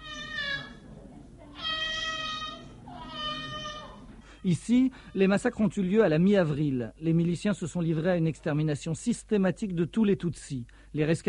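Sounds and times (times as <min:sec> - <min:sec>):
child crying in hills amid coffee and banana plantations: 0:00.0 - 0:00.8, 0:01.6 - 0:04.1
speech: 0:04.4 - 0:11.2.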